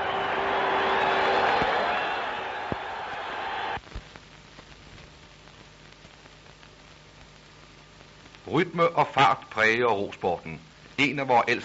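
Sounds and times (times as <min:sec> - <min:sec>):
large crowd of spectators roaring and cheering after a goal: 0:00.0 - 0:03.8
speech: 0:08.5 - 0:11.6.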